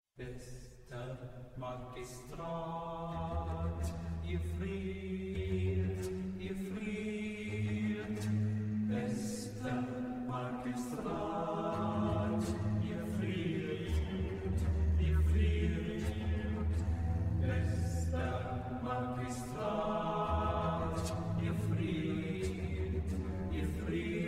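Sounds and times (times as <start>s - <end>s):
canon for four bass voices: 0.2s - 24.2s
cello or double bass accompaniment: 3.0s - 24.2s.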